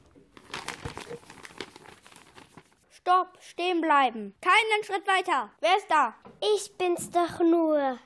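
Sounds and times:
busy crinkly rustling: 0.0 - 2.8
speech: 3.1 - 8.0.

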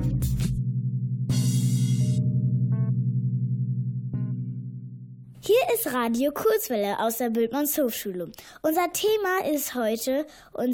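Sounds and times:
school gong struck: 0.0 - 5.3
speech: 5.5 - 10.7.

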